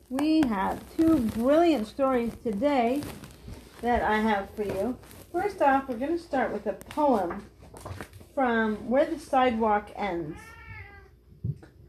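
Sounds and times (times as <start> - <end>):
speech: 0.1 - 10.6
cat meowing: 10.3 - 11.2.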